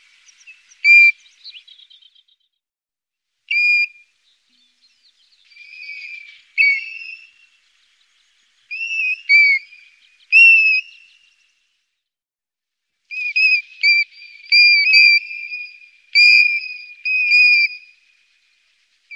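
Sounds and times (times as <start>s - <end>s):
European golden plover whistles: 0.3s - 2.0s, 3.5s - 4.0s, 5.5s - 7.5s, 8.7s - 11.2s, 13.1s - 18.1s.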